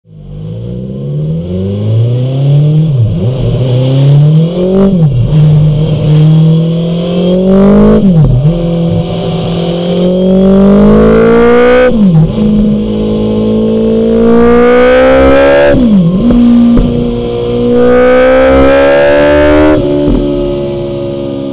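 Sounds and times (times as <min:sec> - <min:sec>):
BMW S 1000 XR motorcycle exhausts: 0:00.1 - 0:21.5.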